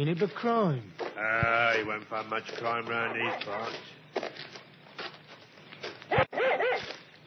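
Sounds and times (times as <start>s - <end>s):
speech: 0.0s - 4.0s
dog barking and yelping excitedly: 6.1s - 7.0s.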